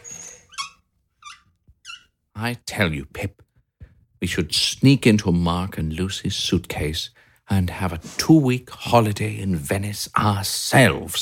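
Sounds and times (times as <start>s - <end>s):
hamster wheel squeaking: 0.0s - 2.1s
speech: 2.4s - 3.4s, 4.2s - 11.2s.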